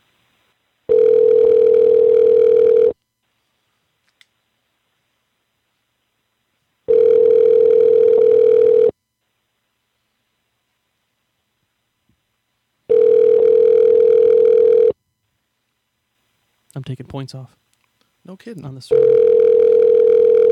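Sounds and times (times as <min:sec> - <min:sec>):
car dealer's phone line ringback tones: 0:00.9 - 0:03.0, 0:06.9 - 0:08.9, 0:12.9 - 0:15.0, 0:18.9 - 0:20.5
speech: 0:16.9 - 0:17.7, 0:18.3 - 0:19.8.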